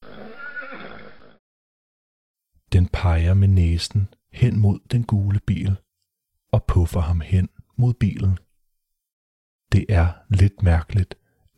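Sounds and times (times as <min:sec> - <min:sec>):
horse neighing: 0:00.0 - 0:01.4
speech: 0:02.7 - 0:05.8, 0:06.5 - 0:08.4, 0:09.7 - 0:11.2.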